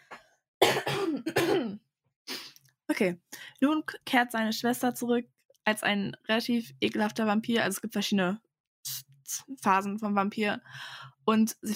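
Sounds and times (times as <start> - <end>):
person coughing harshly: 0.6 - 1.8
throat clearing: 0.6 - 1.8
speech: 3.0 - 8.4, 9.4 - 11.7.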